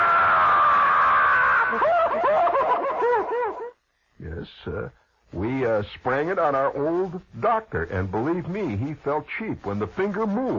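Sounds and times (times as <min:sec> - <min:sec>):
woman screaming and shrieking: 0:00.0 - 0:02.6
laughter: 0:01.6 - 0:03.8
speech: 0:05.8 - 0:10.5.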